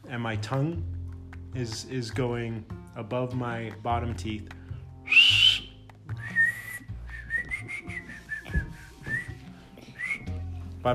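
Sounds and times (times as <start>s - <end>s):
speech: 0.1s - 5.4s
person whistling through their lips: 5.0s - 10.5s.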